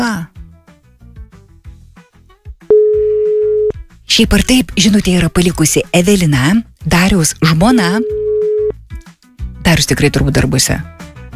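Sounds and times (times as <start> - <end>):
telephone busy tone after a dropped call connection: 2.7 - 3.7, 8.0 - 8.7
speech: 4.2 - 8.3, 9.6 - 11.0.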